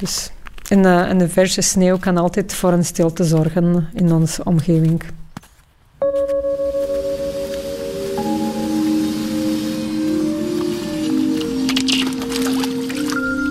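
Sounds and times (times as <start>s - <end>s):
speech: 0.0s - 5.2s
soft noisy wash: 6.0s - 12.2s
steady ringing tonal hum: 6.0s - 13.5s.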